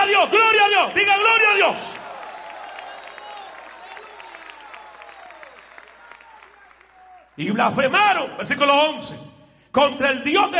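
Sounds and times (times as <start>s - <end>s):
speech: 0.2s - 2.0s, 7.4s - 10.5s
audience applauding: 0.4s - 7.6s.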